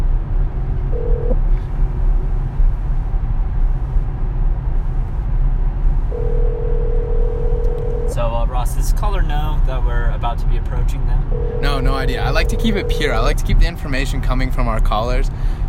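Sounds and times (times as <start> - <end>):
constant low rumbling hum: 0.0 - 15.6
electronic telephone ringback tones: 6.2 - 8.1, 11.3 - 13.2
speech: 10.8 - 15.6.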